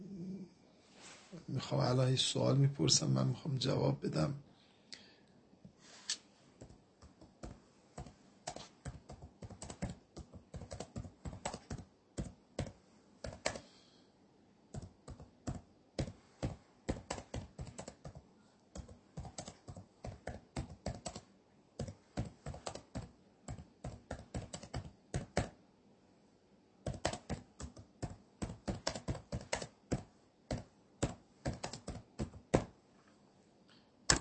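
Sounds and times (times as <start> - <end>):
speech: 1.5 - 4.5
typing on a computer keyboard: 6.6 - 13.7, 14.7 - 18.2, 18.8 - 25.6, 26.9 - 32.7.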